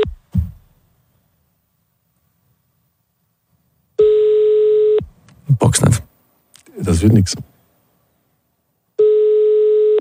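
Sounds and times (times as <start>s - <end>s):
brief soft thump: 0.1s - 0.7s
telephone ringback tone while a call is placed: 4.0s - 5.0s, 9.0s - 9.9s
speech: 7.0s - 7.5s.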